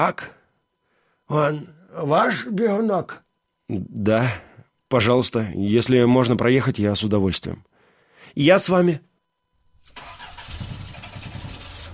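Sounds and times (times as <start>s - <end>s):
speech: 0.0s - 0.4s, 1.3s - 7.7s, 8.3s - 9.1s
car engine starting: 9.8s - 11.9s.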